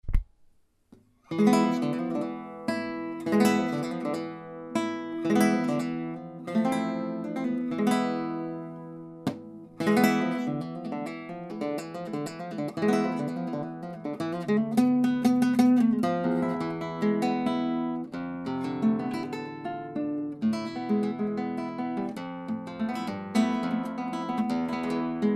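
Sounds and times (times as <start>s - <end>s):
flamenco guitarist playing a solea: 1.3s - 25.3s.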